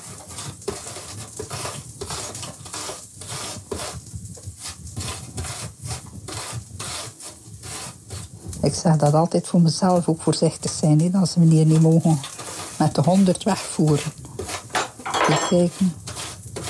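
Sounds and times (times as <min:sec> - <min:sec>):
apple being grated on a grater: 0:00.0 - 0:16.6
speech: 0:08.6 - 0:14.2, 0:15.3 - 0:16.0.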